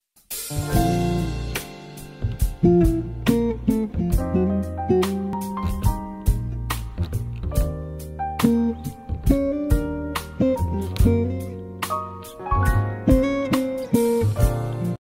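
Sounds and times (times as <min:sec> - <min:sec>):
instrumental jazz music: 0:00.2 - 0:14.9.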